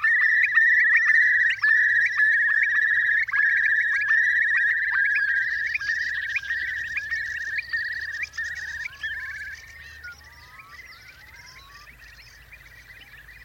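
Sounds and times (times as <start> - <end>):
Eurasian Curlew bubbling song: 0.0 - 13.4.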